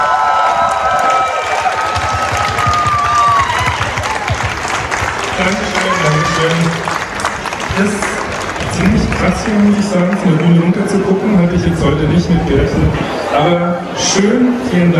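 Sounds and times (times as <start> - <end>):
sizable crowd applauding: 0.0 - 11.2
speech: 7.8 - 8.1, 9.2 - 14.9.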